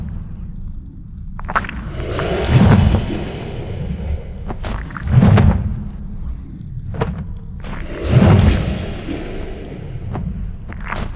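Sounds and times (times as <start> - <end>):
creature moving: 1.6 - 5.0, 7.7 - 10.6.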